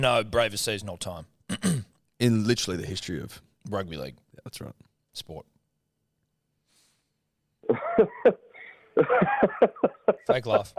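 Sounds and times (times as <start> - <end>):
speech: 0.0 - 5.5, 7.7 - 8.4, 9.0 - 10.7
fake forced throaty cough: 1.5 - 2.0, 7.7 - 10.0
laughter: 7.6 - 10.7.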